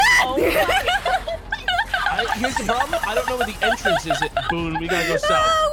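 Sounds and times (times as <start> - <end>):
panicked laughter: 0.0 - 5.6.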